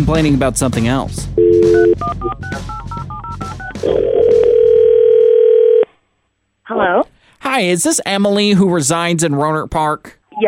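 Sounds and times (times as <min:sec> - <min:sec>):
speech: 0:00.0 - 0:02.8, 0:03.8 - 0:04.5, 0:06.7 - 0:10.4
telephone ringback tone: 0:01.4 - 0:05.8.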